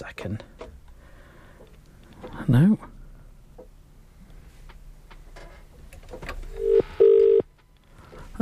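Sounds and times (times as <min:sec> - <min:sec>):
faint noise: 0:00.0 - 0:08.4
speech: 0:00.1 - 0:00.5, 0:02.5 - 0:02.9
telephone ringback tone: 0:06.6 - 0:07.4.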